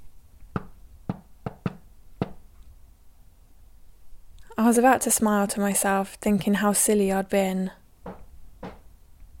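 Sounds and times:
rhythmic knocks on a hard floor: 0:00.5 - 0:02.4, 0:08.0 - 0:08.9
speech: 0:04.6 - 0:07.8.

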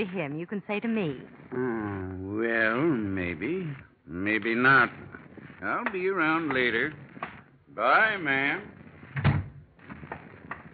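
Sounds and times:
speech: 0:00.0 - 0:07.1, 0:07.8 - 0:08.8
wooden door opening and closing: 0:09.1 - 0:10.7.

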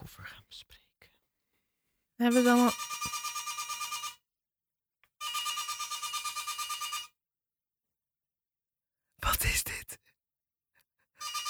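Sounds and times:
speech: 0:00.1 - 0:00.8, 0:02.2 - 0:03.0
telephone ringing with trilling bell-like pulses: 0:02.2 - 0:04.2, 0:05.2 - 0:07.1, 0:11.2 - 0:11.4.

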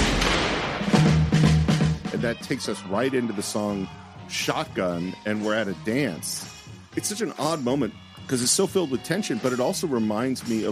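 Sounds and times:
loud booming gunshot from a film: 0:00.0 - 0:01.0
speech: 0:02.2 - 0:10.6.

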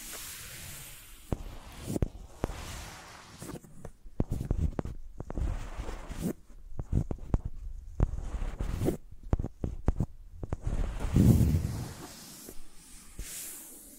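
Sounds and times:
microphones dragged and scraped across a surface: 0:01.3 - 0:13.3
low thuds: 0:10.4 - 0:12.1.

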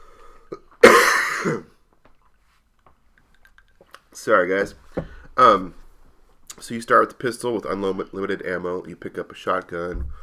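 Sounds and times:
harsh cough: 0:00.5 - 0:01.8
speech: 0:04.2 - 0:05.8, 0:06.6 - 0:10.2.

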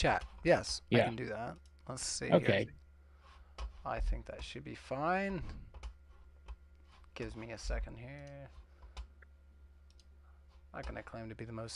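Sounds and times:
speech: 0:00.0 - 0:02.8, 0:03.8 - 0:05.7, 0:07.2 - 0:08.6, 0:10.8 - 0:11.7
computer mouse click on a link in a Zoom chat: 0:08.2 - 0:10.1.

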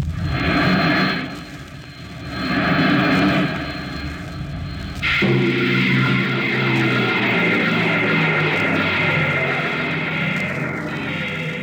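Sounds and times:
deep mechanical rumble of a ship sliding to a halt: 0:00.0 - 0:11.6
rocket ship bow jets firing while landing: 0:00.0 - 0:11.6.

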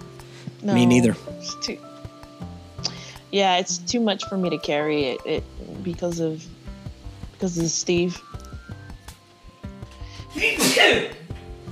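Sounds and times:
speech: 0:00.6 - 0:01.9, 0:03.3 - 0:06.5, 0:07.4 - 0:08.3, 0:10.4 - 0:11.2
quieter speech: 0:00.7 - 0:01.2
single loud sneeze: 0:10.2 - 0:11.3.

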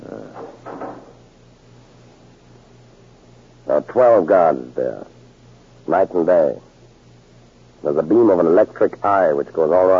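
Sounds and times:
faint steady hum: 0:00.0 - 0:09.9
heavy fire door swinging shut with scraping: 0:00.4 - 0:01.2
speech: 0:03.7 - 0:05.1, 0:05.9 - 0:06.7, 0:07.8 - 0:09.9.

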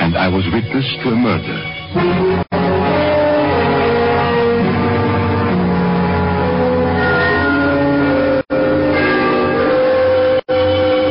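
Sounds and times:
speech: 0:00.2 - 0:02.5
church bells chiming the three-quarter hour at the lower end of the city: 0:03.3 - 0:11.0.

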